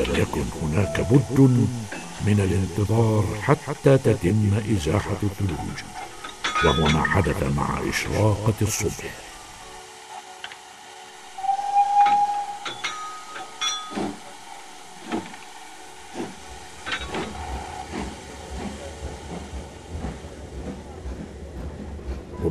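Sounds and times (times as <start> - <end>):
train rumbling with irregular clacking on rails in Yugoslavia: 0.0 - 10.1, 11.0 - 22.4
speech: 0.1 - 6.0, 6.6 - 9.2
metallic clanks of a train starting on rails in Yugoslavia: 6.0 - 7.2, 11.9 - 14.3
brief whistle-like tone of a train: 11.4 - 12.9.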